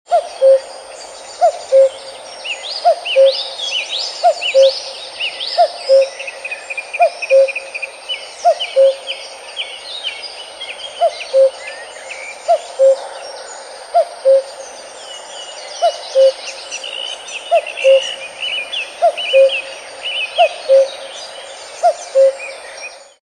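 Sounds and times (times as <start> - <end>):
cuckoo bird ringtone: 0.1 - 0.7, 1.6 - 2.0, 2.8 - 3.4, 4.2 - 4.7, 5.6 - 6.1, 7.0 - 7.6, 8.4 - 9.0, 11.0 - 11.6, 12.5 - 13.0, 14.0 - 14.5, 15.8 - 16.4, 17.5 - 18.2, 19.0 - 19.7, 20.4 - 21.0, 21.8 - 22.4.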